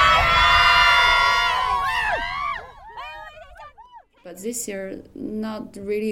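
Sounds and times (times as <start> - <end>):
team screaming and cheering: 0.0 - 4.2
speech: 4.3 - 6.0.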